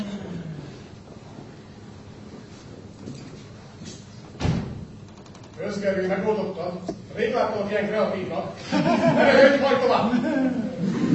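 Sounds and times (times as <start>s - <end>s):
study room door thud: 4.4s - 4.9s
study room door creaking open: 4.4s - 5.8s
speech: 5.7s - 10.9s
laughter: 8.6s - 11.1s.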